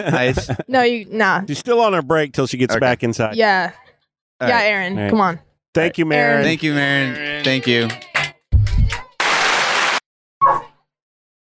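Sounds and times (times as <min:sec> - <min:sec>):
laughter: 0:00.0 - 0:00.8, 0:01.6 - 0:03.2, 0:05.9 - 0:08.0
speech: 0:00.0 - 0:03.8, 0:04.4 - 0:08.0
audience applause: 0:09.2 - 0:10.0.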